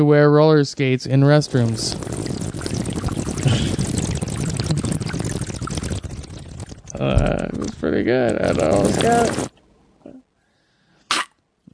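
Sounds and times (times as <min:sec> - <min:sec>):
speech: 0:00.0 - 0:02.4, 0:07.0 - 0:09.5
water gurgling and bubbling in a tub: 0:01.1 - 0:09.5.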